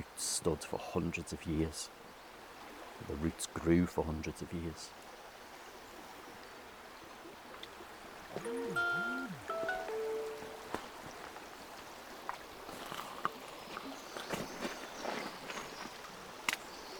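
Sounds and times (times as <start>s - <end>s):
flowing river water: 0.0s - 16.9s
speech: 0.2s - 2.0s, 3.0s - 5.1s
high chirping tones: 8.4s - 10.9s.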